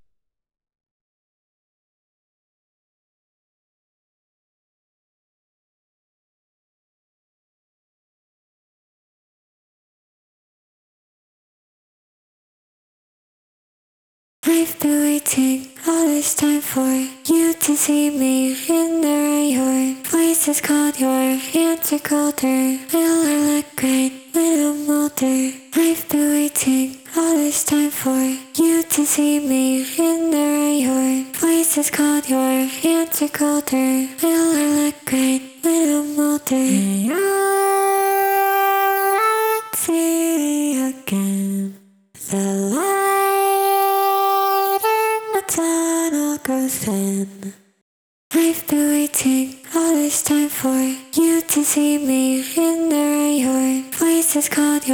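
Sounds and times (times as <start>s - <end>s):
main vocals: 14.4s - 47.6s, 48.3s - 54.9s.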